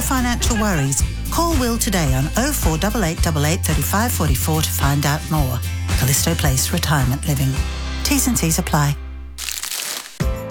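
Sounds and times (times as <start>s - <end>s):
laughter: 0.0s - 2.2s
speech: 0.1s - 9.0s
chocolate truffle wrapper crinkling as it is unwrapped: 9.4s - 10.2s.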